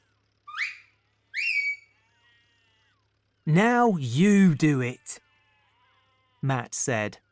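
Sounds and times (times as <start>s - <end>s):
shepherd's whistle blasts sending a sheepdog to the sheep: 0.5s - 1.9s
speech: 3.5s - 5.2s, 6.4s - 7.2s.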